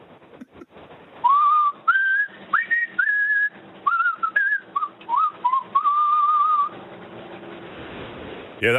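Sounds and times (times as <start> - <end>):
man whistling a tune: 1.2 - 6.7.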